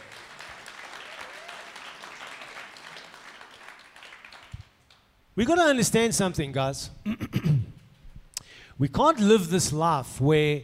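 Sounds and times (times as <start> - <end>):
crowd applauding during a Christian sermon: 0.0 - 5.0
speech: 5.4 - 7.6, 8.8 - 10.6.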